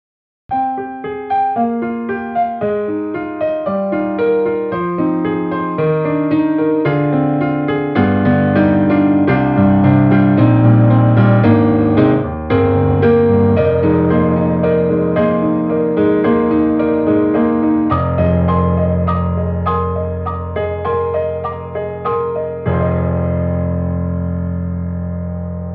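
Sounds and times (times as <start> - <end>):
blues piano: 0.5 - 25.7.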